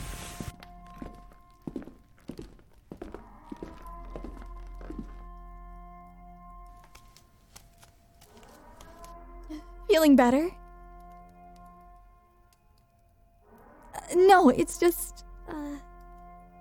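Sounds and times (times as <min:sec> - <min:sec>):
footsteps of a person walking: 0:00.0 - 0:05.8, 0:06.7 - 0:09.2
speech: 0:10.0 - 0:10.6, 0:14.4 - 0:15.2.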